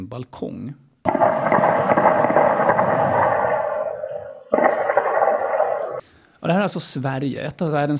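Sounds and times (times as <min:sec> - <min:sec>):
speech: 0:00.1 - 0:01.9, 0:06.4 - 0:07.9
gunshots outdoors at night in Kista Sweden: 0:01.1 - 0:06.0.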